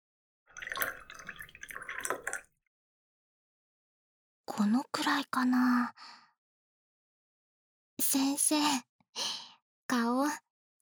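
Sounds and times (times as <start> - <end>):
drink pouring into a cup: 0.5 - 2.5
speech: 4.5 - 6.2, 8.0 - 10.4.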